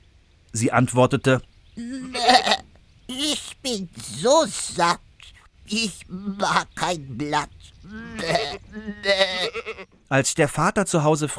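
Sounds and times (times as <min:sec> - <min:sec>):
speech: 0:00.5 - 0:02.6, 0:03.6 - 0:05.1, 0:05.7 - 0:11.3
goat bleating: 0:01.8 - 0:04.8, 0:07.7 - 0:10.0.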